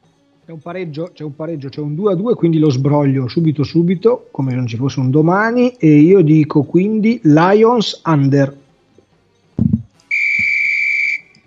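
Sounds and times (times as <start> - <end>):
speech: 0.5 - 8.6
brief low thump: 9.6 - 10.5
sharp steady whistle blast: 10.1 - 11.4.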